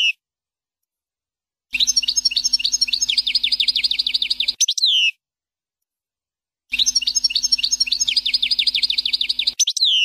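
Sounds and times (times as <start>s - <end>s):
European goldfinch twittering song: 1.7s - 5.2s, 6.7s - 10.0s.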